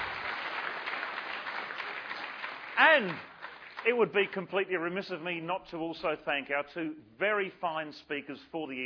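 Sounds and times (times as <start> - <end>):
audience at an evening event applauding: 0.0 - 4.3
speech: 2.8 - 8.8.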